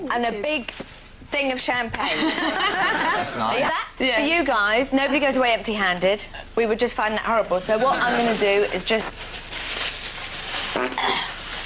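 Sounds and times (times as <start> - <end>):
steady hiss: 0.0 - 11.6
speech: 0.1 - 9.3, 10.8 - 11.3
laughter: 2.0 - 3.8, 7.7 - 8.4
buzzy fart released into a bag: 10.6 - 11.6.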